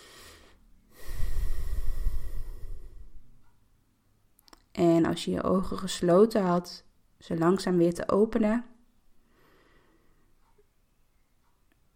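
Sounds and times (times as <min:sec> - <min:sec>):
slow deep breath in and out at the close of a guided relaxation exercise: 0:00.0 - 0:03.4, 0:09.2 - 0:10.5
speech: 0:04.8 - 0:08.7.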